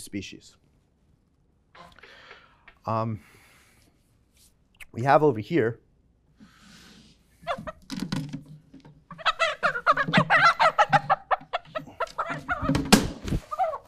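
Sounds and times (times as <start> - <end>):
speech: 0.0 - 0.7, 2.8 - 3.4, 4.9 - 5.8
rooster calling and clucking: 9.1 - 12.8, 13.4 - 13.8.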